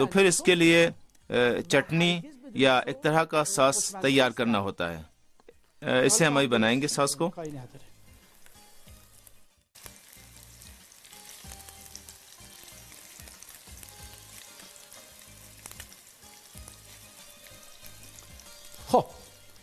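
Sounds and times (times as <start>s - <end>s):
speech: 0.0s - 5.1s, 5.8s - 7.9s
kofta meatballs sizzling and crackling as they fry in a pan: 7.9s - 19.6s.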